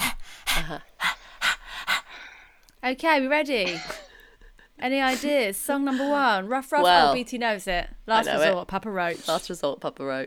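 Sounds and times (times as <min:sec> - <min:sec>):
person imitating a panting dog: 0:00.0 - 0:02.2
speech: 0:00.7 - 0:00.9, 0:02.8 - 0:04.0, 0:04.8 - 0:10.2.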